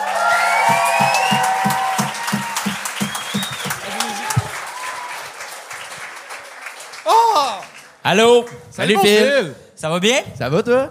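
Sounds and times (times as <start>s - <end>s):
large audience at a show clapping: 0.0s - 9.2s
audience whoops and whistles: 0.4s - 5.0s
speech: 8.1s - 10.8s.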